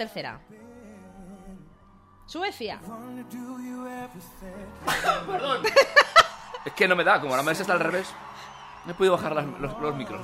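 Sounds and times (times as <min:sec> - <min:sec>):
speech: 0:00.0 - 0:00.8, 0:02.3 - 0:10.2
laughter: 0:04.8 - 0:08.4
person sneezing: 0:04.9 - 0:05.4.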